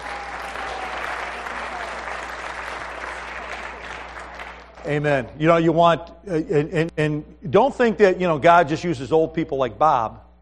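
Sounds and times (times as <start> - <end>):
congregation applauding: 0.0 - 5.1
speech: 4.8 - 10.2.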